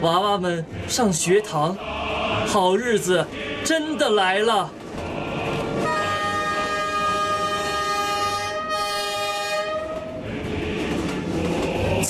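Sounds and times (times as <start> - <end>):
speech: 0.0 - 4.8
China–Laos Railway high-speed electric train rushing through green hills of Pu'er: 0.0 - 12.0
high-speed electric train long loud horn blast: 5.8 - 10.2.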